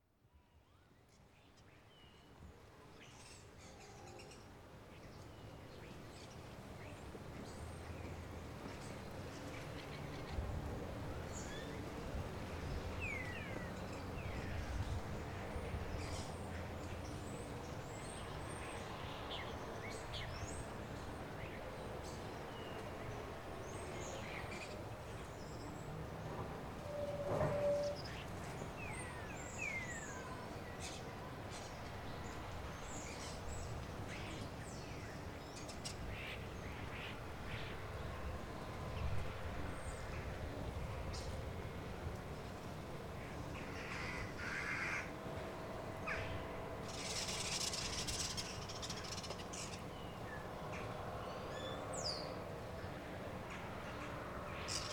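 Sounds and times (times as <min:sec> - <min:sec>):
early morning soundscape at Mont Saint Michel: 0:00.0 - 0:54.9.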